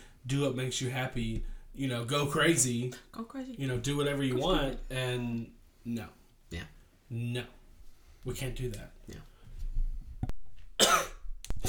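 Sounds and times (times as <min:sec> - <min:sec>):
speech: 0:00.2 - 0:07.6, 0:08.2 - 0:09.3
sharp cough: 0:10.8 - 0:11.6.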